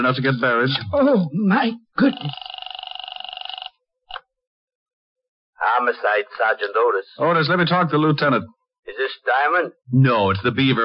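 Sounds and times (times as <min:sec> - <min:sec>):
speech: 0:00.0 - 0:02.6, 0:05.6 - 0:10.8
telephone bell ringing: 0:02.0 - 0:03.8.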